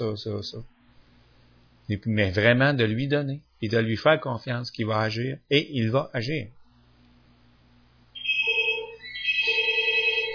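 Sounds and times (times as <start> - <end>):
speech: 0.0 - 0.8, 1.9 - 6.6
telephone ringing with electronic ringtone: 8.2 - 10.3.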